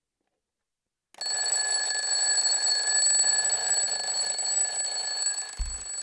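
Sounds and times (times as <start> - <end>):
mechanical alarm clock dial spinning: 1.2 - 6.0
low thump: 5.6 - 5.9.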